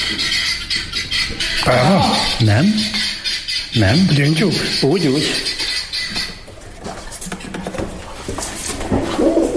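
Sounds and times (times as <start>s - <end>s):
pigeon cooing: 0.0s - 6.4s, 8.8s - 9.5s
speech: 1.6s - 3.1s, 3.7s - 5.5s.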